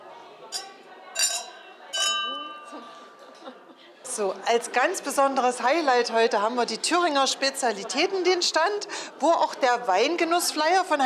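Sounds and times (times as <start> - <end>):
faint murmur: 0.0 - 11.0
glasses clinking in a toast: 0.5 - 3.4
laughter: 2.7 - 4.4
speech: 4.2 - 11.0.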